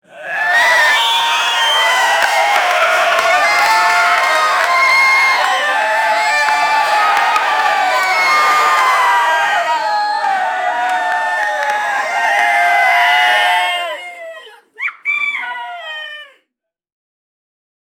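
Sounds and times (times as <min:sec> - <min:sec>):
applause: 0:00.4 - 0:14.1
rooster crowing: 0:00.5 - 0:13.7.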